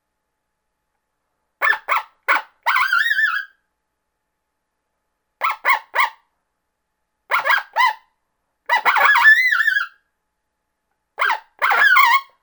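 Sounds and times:
coyote yipping and howling: 1.6s - 3.6s, 5.4s - 6.2s, 7.3s - 8.1s, 8.7s - 10.0s, 11.2s - 12.4s.

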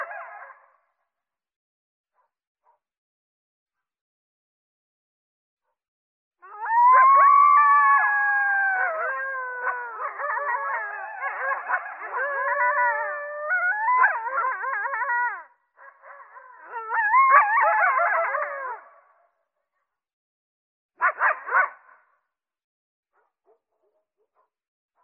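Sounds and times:
coyotes group chorus howling and yipping: 0.0s - 0.7s, 6.4s - 19.1s.

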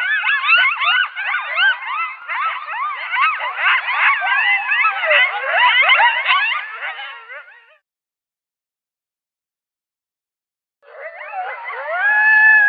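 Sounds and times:
coyote group call of high quavering yips and warbles: 0.0s - 7.8s, 10.8s - 12.6s.

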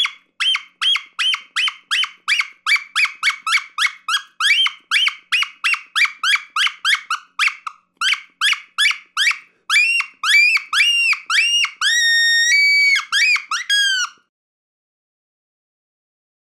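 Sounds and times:
fox pup giving distress calls: 0.0s - 14.2s.

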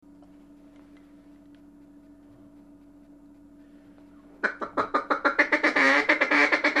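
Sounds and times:
mallard quacking while feeding: 4.4s - 6.7s.

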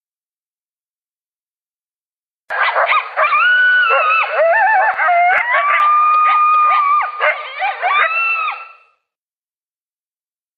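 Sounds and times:
coyotes yipping and yelping in a group chorus: 2.5s - 8.9s.

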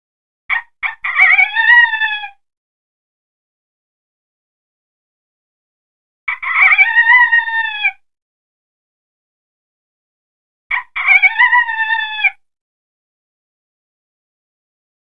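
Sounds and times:
mature coyote calling: 0.5s - 2.4s, 6.3s - 8.0s, 10.7s - 12.4s.

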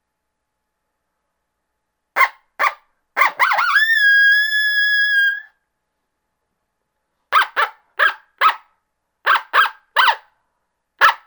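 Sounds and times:
coyote greeting call with barks and howl: 2.2s - 5.5s, 7.3s - 8.6s, 9.3s - 10.2s.

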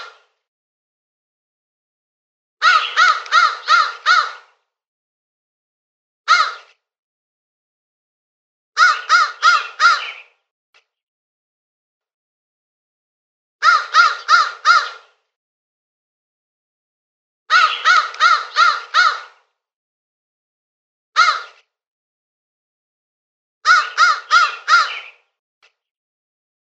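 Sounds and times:
crow uttering rasping caws: 2.6s - 4.6s, 6.3s - 6.7s, 8.8s - 10.3s, 13.6s - 15.1s, 17.5s - 19.5s, 21.2s - 21.6s, 23.6s - 25.2s.

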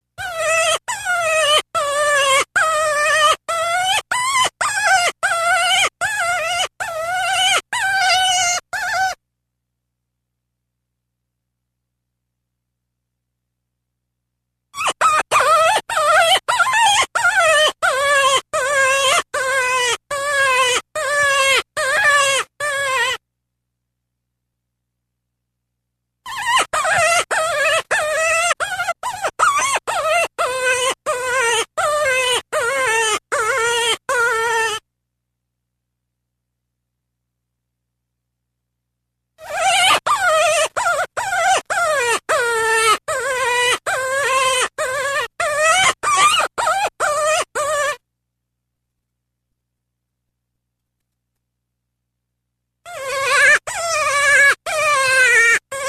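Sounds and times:
cottontail rabbit: 0.0s - 9.2s, 14.7s - 23.2s, 26.2s - 34.9s, 39.4s - 48.0s, 52.8s - 55.8s.

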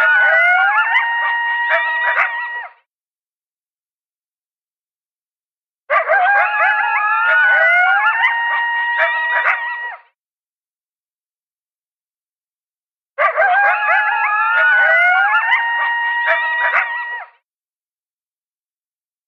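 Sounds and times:
coyotes yipping and howling: 0.0s - 2.8s, 5.9s - 10.0s, 13.2s - 17.4s.

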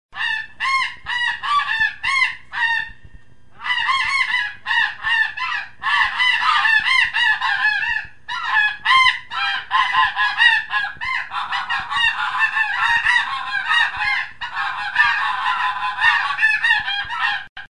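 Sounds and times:
snow goose calling, modified: 0.2s - 3.0s, 3.6s - 17.5s.

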